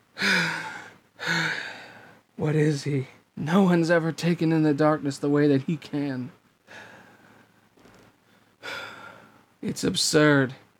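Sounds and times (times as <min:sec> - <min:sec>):
man panting from exhaustion: 0:00.2 - 0:02.2, 0:08.6 - 0:09.4
speech: 0:02.4 - 0:06.9, 0:09.6 - 0:10.6.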